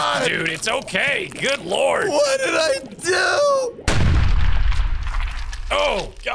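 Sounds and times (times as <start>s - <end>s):
speech: 0.2s - 3.9s, 5.7s - 6.3s
explosion with sustained rumbling roar: 3.9s - 5.8s.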